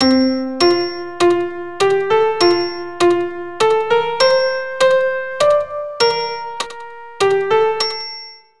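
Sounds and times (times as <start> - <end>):
keyboard lead-in notes: 0.0 - 8.3.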